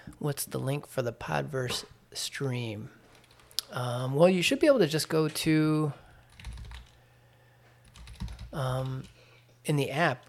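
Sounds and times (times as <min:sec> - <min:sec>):
speech: 0:00.2 - 0:03.0, 0:03.7 - 0:06.0, 0:08.5 - 0:10.2
computer keyboard typing: 0:03.1 - 0:03.6, 0:06.2 - 0:07.0, 0:07.8 - 0:09.2.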